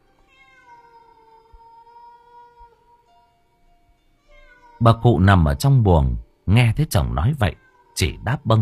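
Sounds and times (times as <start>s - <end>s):
cats yowling: 0.2s - 3.0s, 4.2s - 5.7s, 7.5s - 8.6s
speech: 4.8s - 8.6s.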